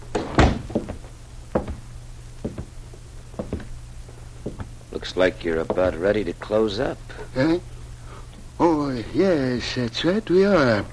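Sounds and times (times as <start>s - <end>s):
faint steady low hum: 0.0s - 10.9s
heavy door thudding shut: 0.1s - 1.0s
soft knocks and clunks: 0.2s - 1.8s, 2.4s - 2.7s, 3.4s - 3.7s, 4.4s - 4.7s
speech: 5.0s - 7.7s, 8.6s - 10.9s.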